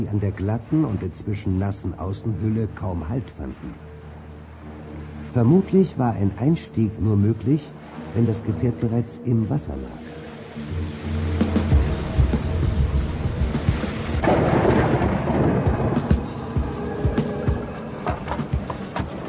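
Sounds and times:
speech: 0:00.0 - 0:03.9, 0:05.3 - 0:10.7
dense loud hiss of rain in a thunderstorm at sea: 0:00.0 - 0:19.2
low rumbling thunder in a storm at sea: 0:11.5 - 0:19.1.

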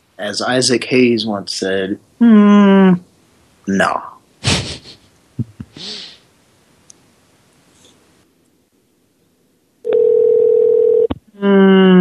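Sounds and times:
speech: 0:00.2 - 0:03.1, 0:03.7 - 0:04.1
telephone line tone while a number is dialed: 0:09.8 - 0:11.1.

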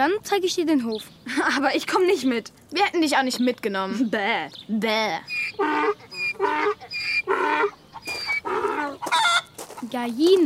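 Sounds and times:
speech: 0:00.0 - 0:07.8, 0:09.8 - 0:10.4
ducks quacking on a farm: 0:05.3 - 0:09.5.

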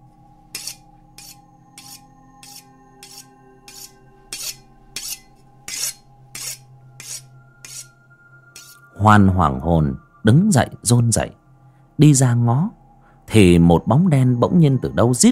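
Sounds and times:
knife for chopping medicinal herbs sharpened on a whetstone: 0:00.5 - 0:08.0, 0:08.6 - 0:08.8
speech: 0:09.0 - 0:11.4, 0:12.0 - 0:15.2.

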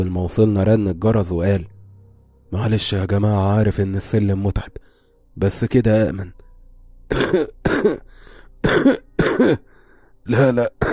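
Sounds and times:
speech: 0:00.0 - 0:01.7, 0:02.5 - 0:04.8, 0:05.4 - 0:06.4, 0:07.1 - 0:09.7, 0:10.3 - 0:10.9
man dry coughing in a dramatized horror story: 0:07.1 - 0:09.7, 0:10.6 - 0:10.9.

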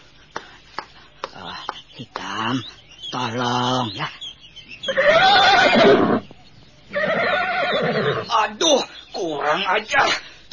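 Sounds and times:
speech: 0:02.0 - 0:04.2, 0:04.9 - 0:06.2, 0:07.8 - 0:10.3
old bad-tempered horse whinnying: 0:04.9 - 0:06.3, 0:06.9 - 0:08.3.

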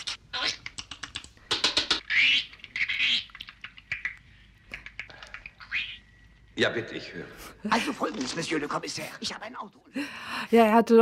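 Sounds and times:
voice imitating great spotted woodpecker drumming: 0:00.0 - 0:06.0
speech: 0:06.6 - 0:11.0.

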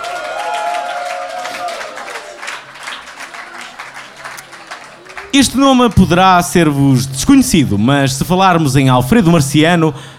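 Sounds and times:
audience applause for a song contest entry: 0:00.0 - 0:06.5
speech: 0:05.3 - 0:10.1.

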